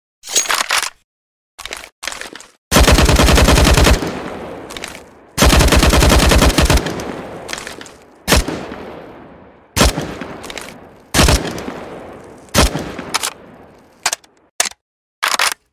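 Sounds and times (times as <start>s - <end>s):
AUG rifle gunfire: 2.7s - 13.8s.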